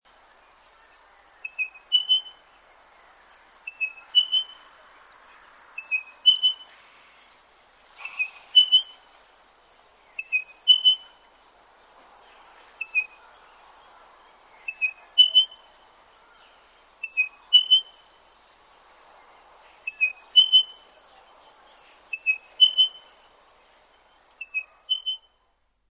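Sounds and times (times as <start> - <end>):
spotted pardalote calling: 1.4 - 2.4, 3.7 - 4.6, 5.8 - 6.8, 8.0 - 9.1, 10.1 - 11.2, 14.6 - 18.1, 19.8 - 20.8, 22.1 - 23.2, 24.4 - 25.3.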